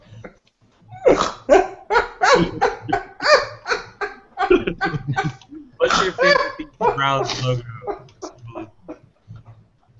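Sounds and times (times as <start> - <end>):
big bullmastiff dog barking deeply: 1.0 - 3.9, 6.0 - 8.4
laughter: 2.2 - 9.0
speech: 7.0 - 7.7.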